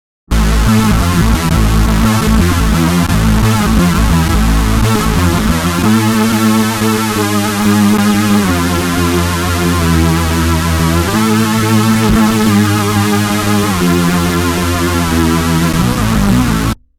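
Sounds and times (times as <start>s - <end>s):
super saw bass synth: 0.3s - 16.8s.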